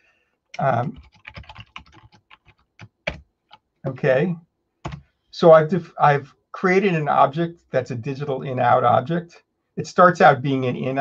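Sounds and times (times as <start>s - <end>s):
rapid typing on a computer keyboard while entering code: 0.5s - 3.6s, 4.8s - 5.0s
speech: 0.6s - 1.2s, 3.8s - 4.5s, 5.4s - 11.0s.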